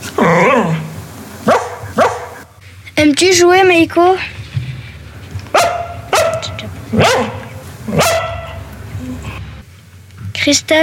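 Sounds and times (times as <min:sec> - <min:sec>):
low steady noise: 0:00.0 - 0:10.8
Lapponian herder dog barking: 0:01.4 - 0:02.4, 0:05.5 - 0:08.6
speech: 0:03.0 - 0:04.4, 0:07.0 - 0:07.3, 0:10.5 - 0:10.8.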